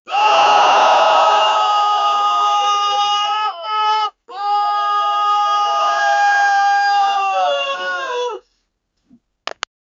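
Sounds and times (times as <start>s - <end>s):
soldier giving scary cries: 1.1s - 8.4s.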